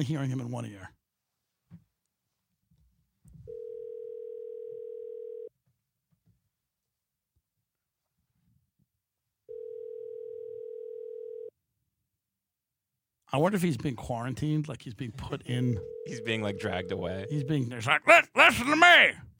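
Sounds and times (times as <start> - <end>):
speech: 0.0 - 1.0, 13.3 - 19.3
telephone line tone while placing a call: 3.5 - 5.5, 9.5 - 11.5.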